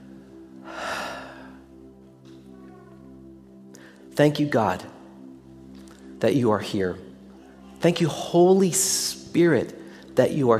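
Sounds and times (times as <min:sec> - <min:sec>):
long deep breath taken by worshippers before prayer: 0:00.6 - 0:01.7
speech: 0:04.2 - 0:04.9, 0:06.2 - 0:07.0, 0:07.8 - 0:10.5.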